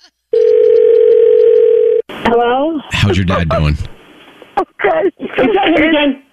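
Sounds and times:
telephone dial tone after hang-up: 0.4 - 2.0
speech: 2.3 - 4.0, 5.0 - 6.2.

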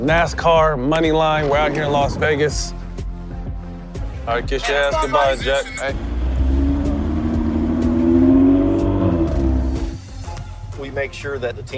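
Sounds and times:
speech: 0.0 - 2.8, 4.3 - 6.1, 10.8 - 11.7
race car engine revving and accelerating at a NASCAR event in Las Vegas: 4.9 - 10.1.

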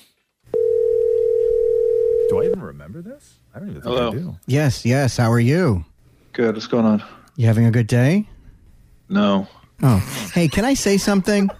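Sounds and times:
telephone dial tone on a recorded phone call: 0.6 - 2.6
speech: 2.6 - 8.3, 9.1 - 11.5.

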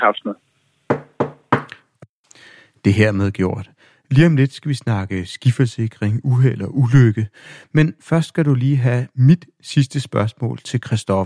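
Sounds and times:
speech: 0.0 - 0.5, 2.8 - 11.2
knocking on a wooden table: 0.9 - 1.8.

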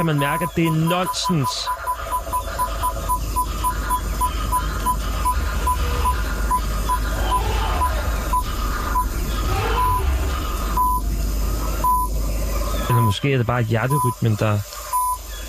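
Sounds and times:
speech: 0.0 - 1.8, 12.9 - 14.7
Morse code beeping tones: 0.0 - 7.0, 10.8 - 11.0, 11.8 - 12.1, 12.9 - 13.2, 13.8 - 14.2, 14.9 - 15.2
radio static and hiss: 0.0 - 15.4.

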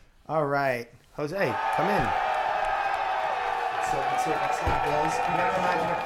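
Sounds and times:
speech: 0.3 - 2.2, 3.9 - 6.0
large audience cheering sound effect: 1.4 - 6.0
scattered applause of a large audience: 1.6 - 6.0.

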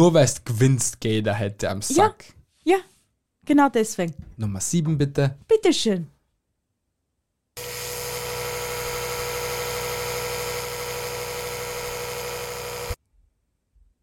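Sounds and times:
speech: 0.0 - 2.9, 3.5 - 6.1
electric toothbrush buzzing: 7.6 - 13.0.

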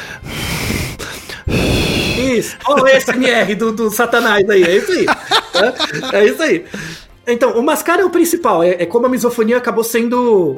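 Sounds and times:
harsh drawn-out exhale: 0.0 - 2.4
voice imitating loud exaggerated breathing with gasping inhales: 0.0 - 2.7
speech: 2.4 - 10.5
laughter: 2.5 - 7.0.

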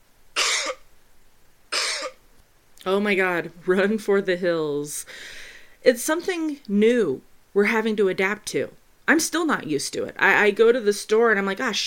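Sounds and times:
person coughing harshly: 0.4 - 0.8, 1.7 - 2.2
speech: 2.8 - 11.8.

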